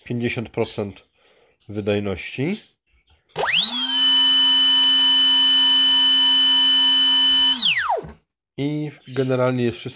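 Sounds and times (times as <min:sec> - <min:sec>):
speech: 0:00.1 - 0:02.7, 0:08.6 - 0:09.9
model aircraft electric motor running without a propeller: 0:03.4 - 0:08.2.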